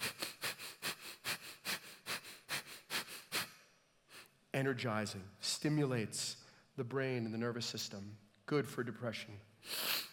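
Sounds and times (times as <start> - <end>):
Bhastrika breathing, rapid forceful breaths through the nose: 0.0 - 3.6
speech: 4.6 - 9.5.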